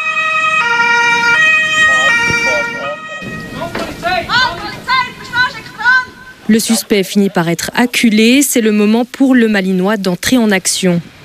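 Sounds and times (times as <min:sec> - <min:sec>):
police car siren during a car chase with a fleeing vehicle: 0:00.0 - 0:04.4
speech: 0:06.5 - 0:11.2.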